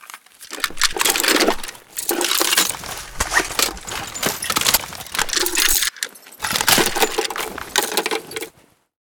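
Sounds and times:
M249 machine gun reload: 0.4s - 8.5s.

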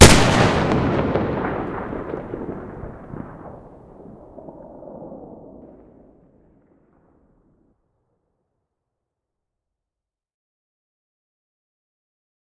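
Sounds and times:
AWM weapon muzzle blast in stereo: 0.0s - 3.5s.

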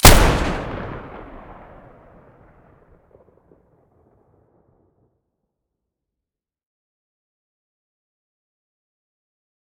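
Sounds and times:
pump-action shotgun muzzle blast: 0.0s - 2.0s.

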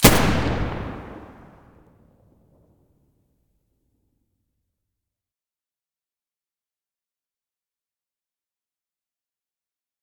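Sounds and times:
G36 rifle muzzle gunshots: 0.0s - 1.8s.

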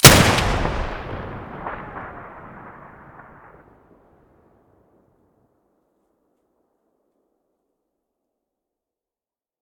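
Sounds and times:
gun muzzle blast: 0.0s - 3.5s.

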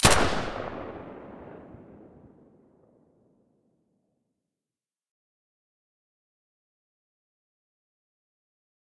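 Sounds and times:
SA80 rifle shot with silencer: 0.0s - 2.5s.

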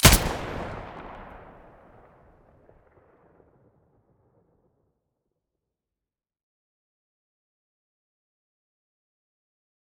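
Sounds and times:
AUG weapon muzzle blast: 0.0s - 1.8s.

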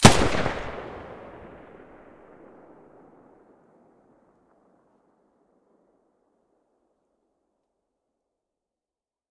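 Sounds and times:
submachine gun muzzle blast: 0.0s - 2.7s.

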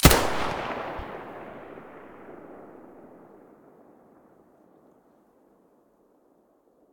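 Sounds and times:
MP9 gun muzzle blast in stereo: 0.0s - 3.4s.

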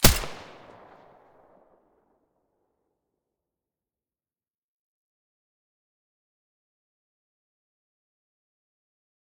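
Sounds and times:
silenced weapon gunshots in mono: 0.0s - 1.3s.

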